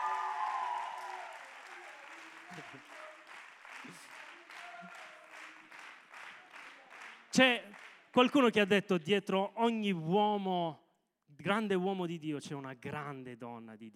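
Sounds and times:
audience applause at a gathering: 0.0s - 8.0s
speech: 2.5s - 3.0s, 7.4s - 10.8s, 11.4s - 13.9s.

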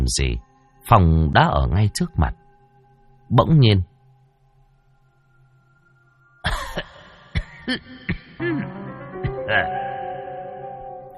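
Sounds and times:
speech: 0.1s - 2.4s, 3.3s - 3.9s, 7.7s - 8.8s, 9.5s - 9.9s
soft hacking coughs: 6.4s - 9.6s
throat clearing: 6.4s - 9.7s.

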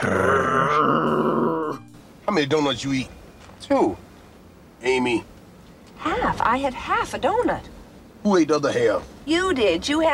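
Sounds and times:
man growling from deep in his throat: 0.0s - 1.8s
speech: 2.4s - 4.1s, 4.8s - 5.3s, 6.1s - 10.1s.

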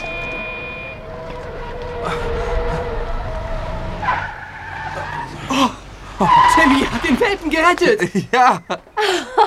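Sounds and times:
car engine: 0.0s - 8.1s
car tires squealing on a street: 0.7s - 7.6s
speech: 5.6s - 9.3s.

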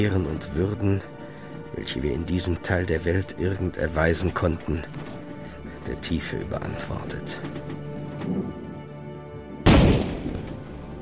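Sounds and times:
speech: 0.0s - 5.2s, 5.8s - 7.6s
cannon shot fired as a funeral salute for a ship's captain buried at sea: 9.6s - 10.6s.

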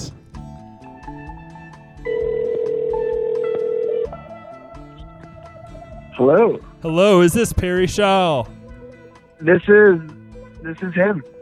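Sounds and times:
electronic telephone tone as a call is dialed: 2.1s - 4.3s
speech: 6.2s - 8.6s, 9.4s - 11.4s.

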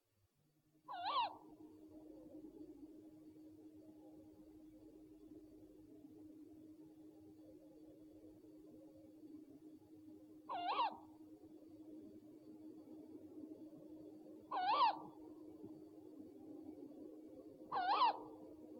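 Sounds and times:
faint steady hum: 0.0s - 18.7s
owl hoarse calls: 0.9s - 1.4s, 10.5s - 11.0s, 14.5s - 15.2s, 17.7s - 18.4s.

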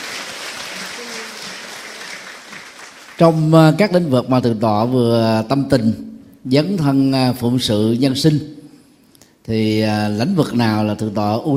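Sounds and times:
audience applauding at a Buddhist talk in Vietnam: 0.0s - 3.6s
speech: 3.2s - 8.6s, 9.5s - 11.5s.

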